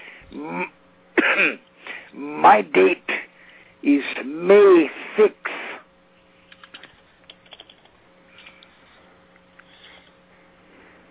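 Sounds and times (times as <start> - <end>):
speech: 0.4 - 0.8, 1.4 - 3.2, 3.8 - 5.5
short rough coughs: 1.2 - 1.6.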